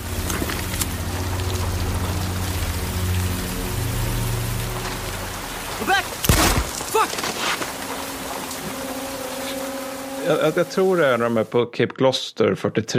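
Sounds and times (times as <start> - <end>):
sharp splashing bursts: 0.0 - 11.5
steady rain pattering on a hard surface: 0.0 - 11.5
speech: 10.3 - 12.9.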